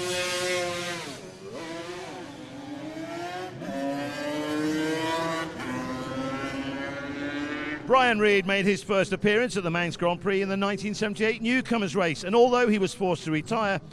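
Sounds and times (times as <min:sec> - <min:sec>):
350cc Yamaha TZ racing motorcycle engine at a motorcycle road-racing event: 0:00.0 - 0:07.9
speech: 0:07.9 - 0:13.9.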